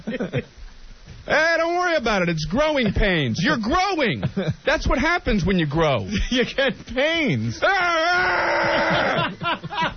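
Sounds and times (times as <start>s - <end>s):
speech: 0.1s - 0.6s, 1.3s - 9.9s
person screaming hideously: 7.6s - 9.3s
laughter: 7.6s - 9.9s.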